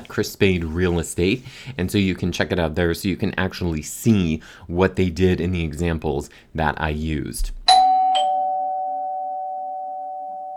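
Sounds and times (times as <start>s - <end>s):
speech: 0.1s - 7.6s
doorbell ringing with a bright chime: 7.7s - 10.5s.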